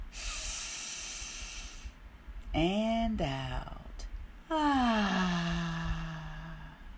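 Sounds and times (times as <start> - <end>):
deep inhale during a breathing exercise: 0.0 - 2.0, 5.1 - 6.9
speech: 2.5 - 3.8, 4.5 - 5.4.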